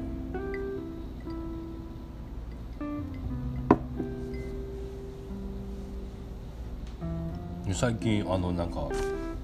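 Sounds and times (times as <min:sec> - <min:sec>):
faint tonal sounds: 0:00.0 - 0:07.5
steady hum: 0:00.0 - 0:09.4
wine glass set down on a table: 0:03.6 - 0:04.2
speech: 0:07.7 - 0:09.2.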